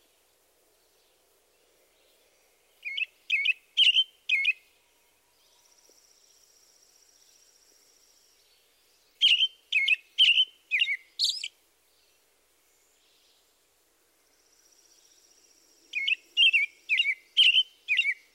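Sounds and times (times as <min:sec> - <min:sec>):
faint high hiss: 0:00.0 - 0:18.3
American Robin singing whistled phrases: 0:02.8 - 0:04.6, 0:09.1 - 0:11.5, 0:15.9 - 0:18.3.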